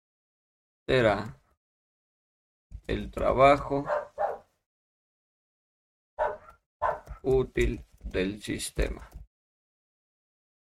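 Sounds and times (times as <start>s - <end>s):
speech: 0.9s - 1.4s, 2.9s - 4.0s, 7.2s - 9.2s
dog barking: 3.8s - 4.5s, 6.2s - 7.2s.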